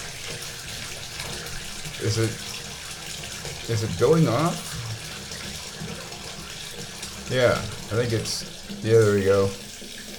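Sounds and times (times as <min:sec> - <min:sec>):
water running from a bathtub tap: 0:00.0 - 0:10.1
speech: 0:02.0 - 0:02.5, 0:03.7 - 0:04.8, 0:07.3 - 0:09.6.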